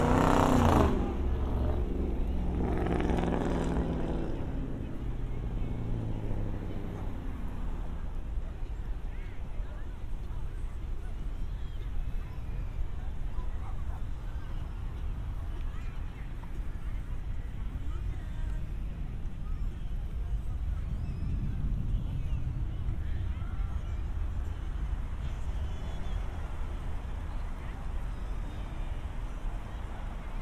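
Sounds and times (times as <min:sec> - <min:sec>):
loud vehicle passing: 0:00.0 - 0:08.0
steady low traffic rumble on a city walk: 0:00.0 - 0:30.4.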